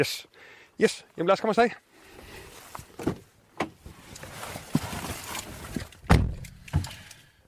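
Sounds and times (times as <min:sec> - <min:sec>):
speech: 0:00.0 - 0:01.9
lighter clunks and rattles: 0:02.9 - 0:07.2
Dacia Duster car door slamming shut: 0:06.0 - 0:06.8.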